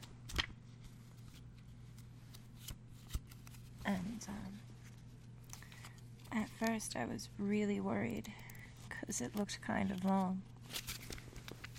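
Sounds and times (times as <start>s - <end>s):
paper pamphlet pages being flipped: 0.0s - 3.8s, 4.7s - 7.0s, 9.0s - 11.7s
steady low hum: 0.0s - 11.7s
speech: 3.9s - 4.7s, 6.3s - 8.5s, 9.1s - 10.8s.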